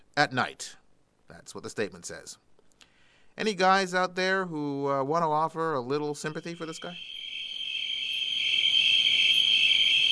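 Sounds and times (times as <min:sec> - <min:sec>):
speech: 0:00.2 - 0:02.5, 0:03.4 - 0:07.2
shrill chorus of crickets chirping: 0:06.2 - 0:10.1.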